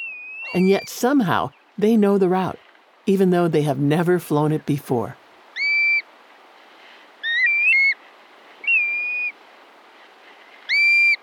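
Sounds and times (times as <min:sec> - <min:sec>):
black-bellied plover calls: 0:00.0 - 0:01.7, 0:05.5 - 0:06.1, 0:07.2 - 0:08.0, 0:08.6 - 0:09.4, 0:10.7 - 0:11.2
faint steady hiss: 0:00.0 - 0:11.2
speech: 0:00.5 - 0:05.2.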